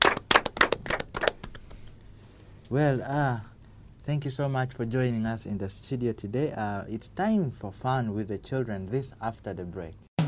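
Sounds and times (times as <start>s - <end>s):
studio audience clapping for guests: 0.0s - 2.0s
speech: 2.7s - 10.1s.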